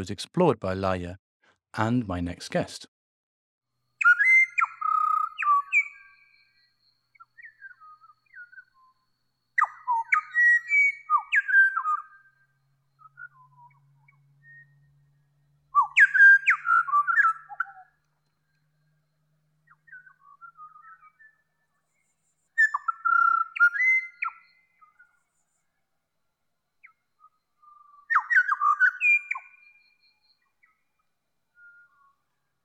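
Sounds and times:
speech: 0.0s - 2.9s
pied butcherbird singing flute-like whistled phrases: 4.0s - 15.0s, 15.7s - 18.6s, 19.6s - 21.6s, 22.6s - 25.2s, 26.8s - 30.9s, 31.5s - 32.2s.

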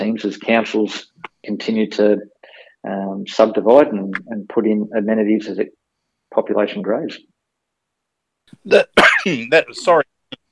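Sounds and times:
speech: 0.0s - 7.3s, 8.6s - 10.1s
person coughing: 8.7s - 9.5s
throat clearing: 8.8s - 9.5s.

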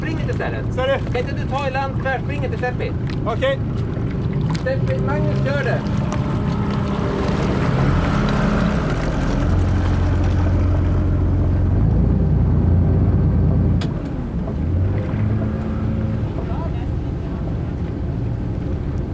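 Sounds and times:
motorboat engine droning as the boat comes in to dock at an island: 0.0s - 19.1s
water wash: 0.0s - 19.1s
speech: 0.4s - 3.9s, 4.6s - 6.1s.

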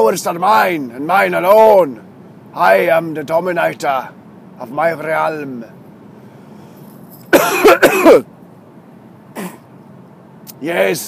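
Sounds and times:
speech: 0.0s - 5.8s, 7.4s - 8.3s, 10.6s - 11.0s
harsh coughs: 7.3s - 8.3s, 9.4s - 9.7s.

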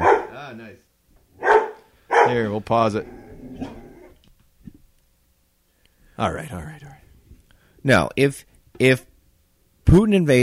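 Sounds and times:
dog barking: 0.0s - 0.4s, 1.4s - 2.5s
speech: 2.3s - 3.8s, 6.2s - 7.0s, 7.8s - 9.1s, 9.9s - 10.4s.

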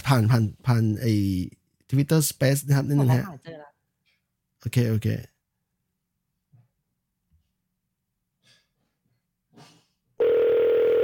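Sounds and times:
speech: 0.1s - 3.6s, 4.6s - 5.3s
loud steady telephone ringing tone: 10.2s - 11.0s.

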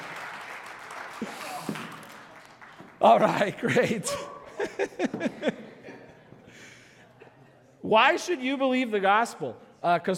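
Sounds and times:
audience applause: 0.0s - 3.6s
speech: 1.2s - 1.8s, 3.0s - 5.7s, 7.9s - 10.1s
laughter: 3.0s - 7.6s.

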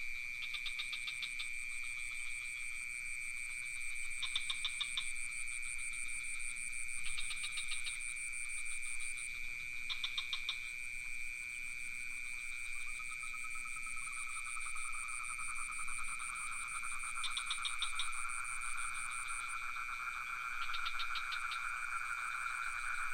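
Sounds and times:
rapid pulsed frog calls near a pond in Ubud: 0.0s - 23.1s
crickets trilling near a pond in Ubud: 0.1s - 23.1s.

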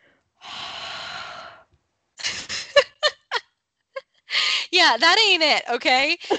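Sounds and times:
short sharp huffs of breath: 0.4s - 1.7s, 4.3s - 4.7s
voice imitating a long hot breathy exhale onto paper: 0.4s - 1.7s
speech: 4.8s - 6.3s.

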